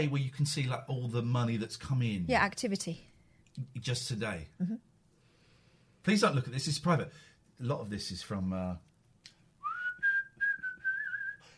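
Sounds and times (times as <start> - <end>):
speech: 0.0 - 4.9, 6.0 - 8.9
person whistling a tune: 9.6 - 11.5.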